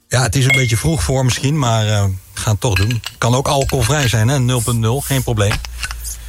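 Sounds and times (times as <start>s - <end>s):
speech: 0.1s - 5.9s
glass clinking: 0.5s - 0.9s, 2.7s - 4.2s.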